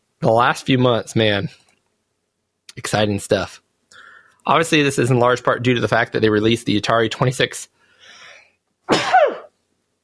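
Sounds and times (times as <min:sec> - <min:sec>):
speech: 0:00.2 - 0:01.6, 0:02.8 - 0:03.6, 0:04.4 - 0:07.8
person sneezing: 0:08.9 - 0:09.6.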